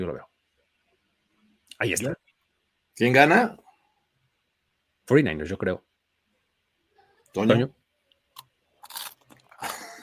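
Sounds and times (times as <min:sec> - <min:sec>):
speech: 0:00.0 - 0:00.3, 0:01.8 - 0:02.2, 0:03.0 - 0:03.6, 0:05.1 - 0:05.9, 0:07.3 - 0:07.8
chewing crunchy food: 0:08.4 - 0:09.9.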